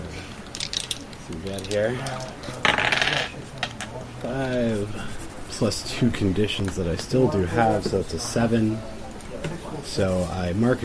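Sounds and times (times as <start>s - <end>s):
dice rattling across a hard tabletop in a game: 0.5s - 3.4s
speech: 1.3s - 9.0s, 9.7s - 10.8s.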